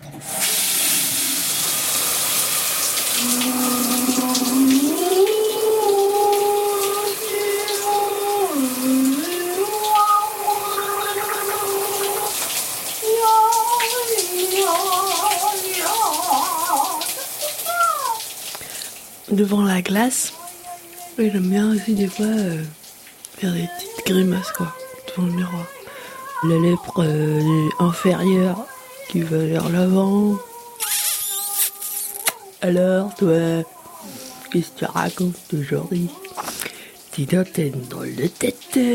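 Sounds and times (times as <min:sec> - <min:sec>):
shower water running: 0:00.0 - 0:38.9
person singing or humming a wordless melody under the shower: 0:03.1 - 0:12.4, 0:13.0 - 0:17.3, 0:20.3 - 0:22.7, 0:23.4 - 0:36.8
speech: 0:04.2 - 0:05.4, 0:19.4 - 0:20.4, 0:21.2 - 0:22.8, 0:23.4 - 0:25.8, 0:26.4 - 0:30.5, 0:32.6 - 0:36.2, 0:37.2 - 0:38.9.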